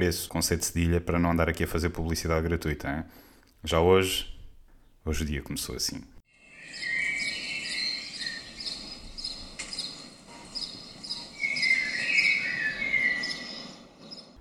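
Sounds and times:
speech: 0.0s - 4.3s, 5.0s - 6.1s
cricket chirping on a sunny warm day: 6.4s - 14.3s.

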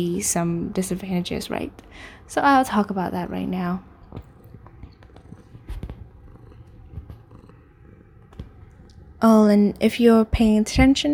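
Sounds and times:
speech: 0.0s - 4.3s, 9.2s - 11.1s
cat purring on a person's lap: 3.9s - 11.1s.

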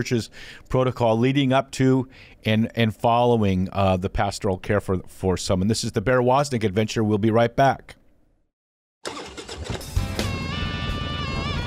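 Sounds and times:
speech: 0.0s - 8.0s
motorcycle engine starting and revving: 9.0s - 11.6s.

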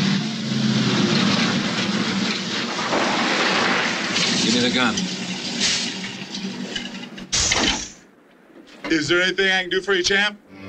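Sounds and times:
heavy truck engine rumbling: 0.0s - 8.3s
speech: 4.6s - 5.7s, 8.9s - 10.4s.

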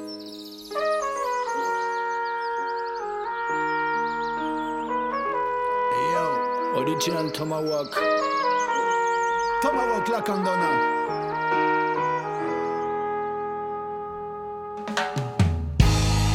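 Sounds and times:
song with bright sustained notes playing: 0.7s - 16.3s
speech: 6.9s - 8.4s, 9.6s - 11.2s.

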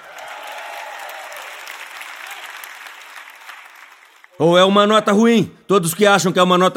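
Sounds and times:
church audience cheering and clapping: 0.0s - 4.4s
speech: 4.4s - 6.7s.

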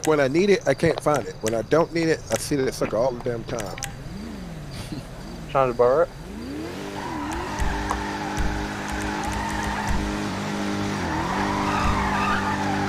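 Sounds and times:
speech: 0.0s - 4.0s, 4.9s - 6.2s
tires squealing as a Dodge Charger drifts in a video game: 1.0s - 12.8s
steady droning car engine in a video game: 3.3s - 12.8s.

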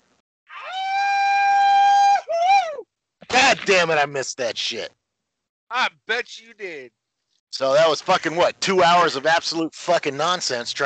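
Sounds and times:
person imitating a wolf howl: 0.5s - 2.8s
speech: 3.6s - 5.0s, 5.7s - 10.8s.

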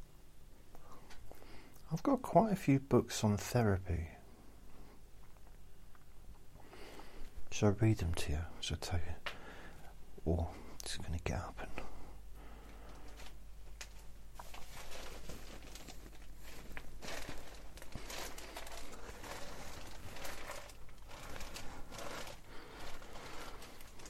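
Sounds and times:
speech: 1.9s - 4.2s, 7.6s - 9.3s, 10.2s - 11.8s
footsteps on crinkling paper: 12.8s - 24.0s.

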